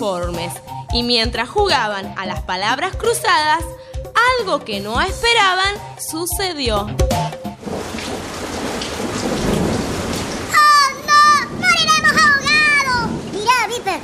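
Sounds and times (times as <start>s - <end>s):
speech: 0.0s - 7.2s
deep rumble of thunder: 7.6s - 14.0s
heavy rain pouring down: 7.6s - 14.0s
excited high-pitched voices speaking: 10.5s - 14.0s.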